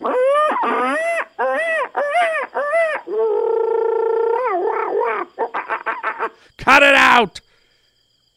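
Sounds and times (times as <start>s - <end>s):
person imitating monkey calls: 0.0s - 6.4s
speech: 6.7s - 7.4s.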